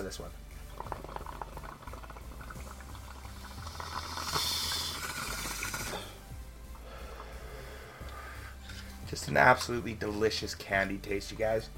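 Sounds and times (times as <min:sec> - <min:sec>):
speech: 0:00.1 - 0:00.9, 0:09.1 - 0:11.7
bong water bubbling and gurgling during a long pull: 0:00.6 - 0:06.2.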